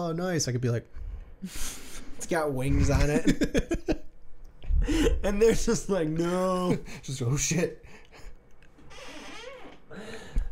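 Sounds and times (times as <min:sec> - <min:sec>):
speech: 0:00.0 - 0:04.0, 0:04.8 - 0:07.9
chair squeaking: 0:08.8 - 0:09.9.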